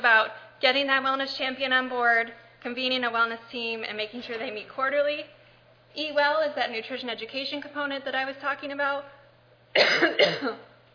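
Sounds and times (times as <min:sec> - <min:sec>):
speech: 0:00.0 - 0:05.4, 0:06.0 - 0:09.2, 0:09.8 - 0:10.7
person coughing while giving a talk: 0:09.8 - 0:10.7.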